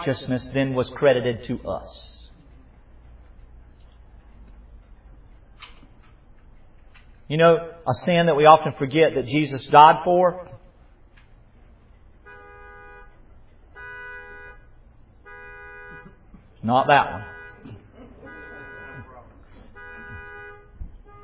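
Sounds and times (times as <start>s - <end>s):
speech: 0.0s - 2.1s, 7.3s - 10.6s, 16.6s - 17.8s
car horn honking outdoors: 12.2s - 21.2s.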